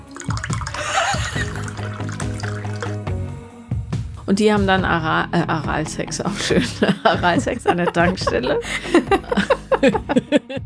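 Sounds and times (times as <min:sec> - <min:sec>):
liqueur pouring into a glass: 0:00.0 - 0:03.2
laughter: 0:00.8 - 0:01.8, 0:06.4 - 0:10.6
speech: 0:04.3 - 0:10.6.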